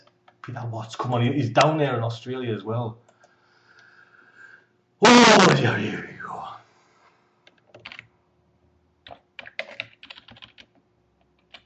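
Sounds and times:
speech: 0:00.5 - 0:03.0, 0:05.6 - 0:06.5
typing an email on a computer keyboard: 0:07.5 - 0:08.1, 0:09.0 - 0:11.6.

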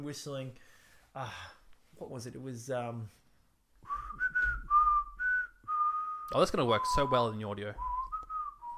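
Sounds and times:
speech: 0:00.0 - 0:03.2, 0:06.3 - 0:07.9
person whistling a tune: 0:03.8 - 0:08.7.

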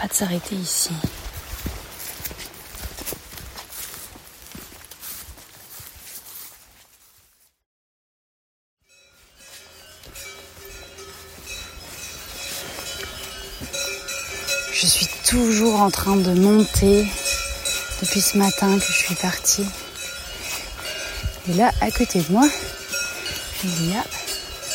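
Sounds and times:
speech: 0:00.0 - 0:01.3, 0:15.3 - 0:17.2, 0:18.0 - 0:19.8, 0:21.5 - 0:22.8, 0:23.6 - 0:24.2
shuffling clip-clop of cow hooves: 0:00.0 - 0:07.3, 0:09.0 - 0:24.7
cowbells clanking and jingling from a herd of cows: 0:08.8 - 0:24.7.

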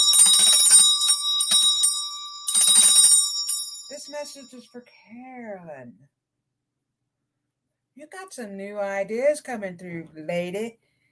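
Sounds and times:
small high-pitched bell being shaken: 0:00.0 - 0:04.7
speech: 0:03.9 - 0:06.2, 0:08.0 - 0:10.8.

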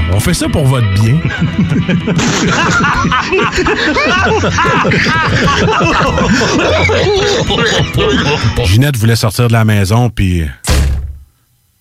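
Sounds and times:
speech: 0:00.2 - 0:10.6
laughter: 0:01.0 - 0:08.8
someone bumping into a freshly washed glass patio door: 0:10.7 - 0:11.3.

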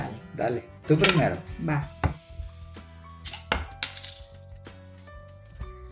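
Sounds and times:
speech: 0:00.4 - 0:02.0
glass and metal clinking: 0:00.9 - 0:01.4, 0:03.2 - 0:04.4
cap pried off a bottle of Pilsner beer: 0:03.2 - 0:04.3.

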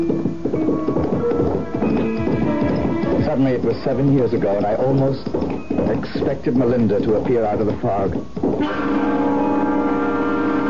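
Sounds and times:
speech: 0:00.0 - 0:00.3, 0:03.4 - 0:09.5
horse hooves clip-clopping: 0:00.0 - 0:10.6.

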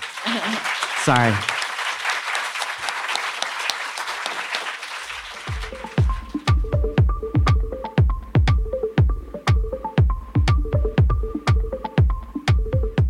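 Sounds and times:
audience applause: 0:00.0 - 0:06.5
laughter: 0:00.2 - 0:00.9
speech: 0:00.3 - 0:01.6
rhythmic thumping music beat with bass line: 0:05.5 - 0:13.0.

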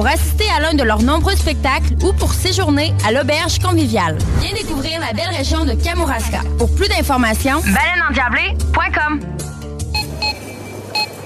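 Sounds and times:
speech: 0:00.0 - 0:09.5
low hum of store noise: 0:00.0 - 0:11.2
short electronic grocery checkout scanner beeps: 0:09.9 - 0:11.2.

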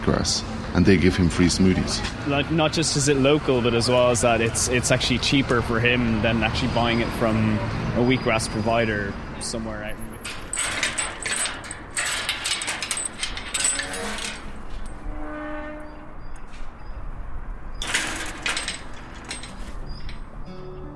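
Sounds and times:
speech: 0:00.1 - 0:10.4
metal garden gate creaking open: 0:10.0 - 0:15.2, 0:17.8 - 0:20.4
metal garden gate latch and hinges clanking: 0:10.1 - 0:15.0, 0:17.8 - 0:20.4.

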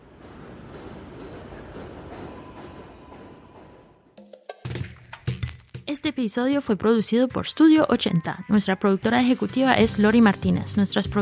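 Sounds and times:
train rumbling past overhead near a station: 0:00.0 - 0:04.2
speech: 0:05.9 - 0:11.2.

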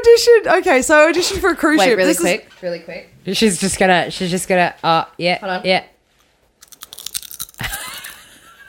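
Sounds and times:
speech: 0:00.2 - 0:05.9
loud crunching of potato chips being chewed: 0:06.6 - 0:08.2.

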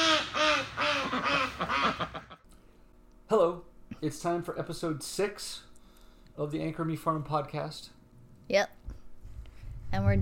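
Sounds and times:
ducks quacking: 0:00.0 - 0:02.4
speech: 0:03.3 - 0:05.7, 0:06.4 - 0:08.8, 0:09.9 - 0:10.2.

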